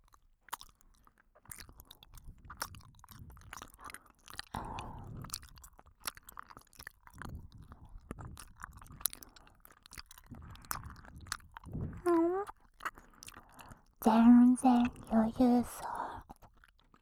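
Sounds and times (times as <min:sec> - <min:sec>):
chewing gummy candy with soft wet squishy bites: 0:00.0 - 0:16.9
speech: 0:14.1 - 0:15.9.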